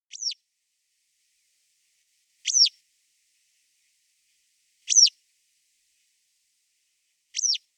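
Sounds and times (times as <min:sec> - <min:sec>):
citrine wagtail calling: 0:02.4 - 0:02.7.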